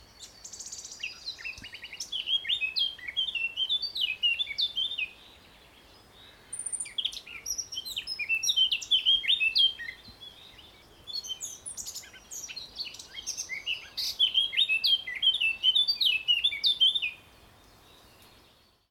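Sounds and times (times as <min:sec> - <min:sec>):
Eurasian blackcap singing: 0:00.1 - 0:05.2, 0:06.5 - 0:17.2.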